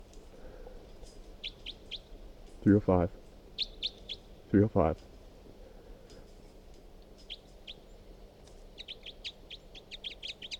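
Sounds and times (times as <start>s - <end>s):
steady hiss: 0.0s - 10.5s
bird chirps: 1.4s - 2.1s, 3.6s - 4.3s, 7.2s - 8.0s, 8.8s - 10.5s
speech: 2.6s - 3.2s, 4.5s - 5.1s.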